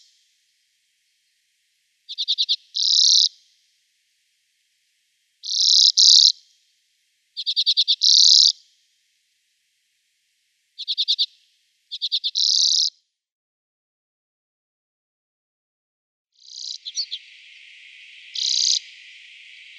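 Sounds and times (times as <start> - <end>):
steady hiss: 0.0 - 12.0, 16.4 - 19.7
common redpoll song with dry trills and harsh buzz: 0.0 - 12.9, 16.4 - 19.7.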